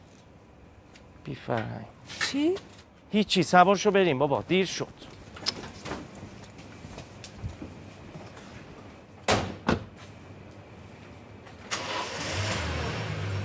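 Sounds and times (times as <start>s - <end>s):
speech: 1.2s - 5.1s
car engine cranking without catching: 11.7s - 13.3s.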